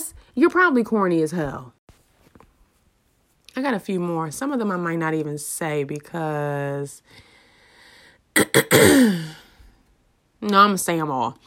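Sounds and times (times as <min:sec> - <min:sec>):
speech: 0:00.4 - 0:01.8, 0:03.6 - 0:07.3, 0:08.4 - 0:09.4, 0:10.4 - 0:11.4
person clearing throat: 0:08.4 - 0:09.4.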